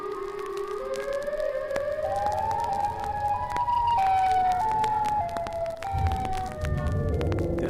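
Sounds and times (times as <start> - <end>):
wailing siren rising into an electric scream: 0.0 - 7.6
low rumble: 2.7 - 7.6.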